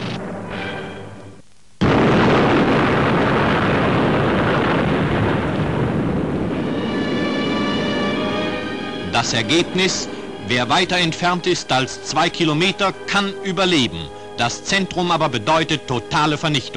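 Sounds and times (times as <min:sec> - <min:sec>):
atomic bomb test explosion in the USA from an old newsreel: 0:00.0 - 0:12.0
speech: 0:09.2 - 0:16.7.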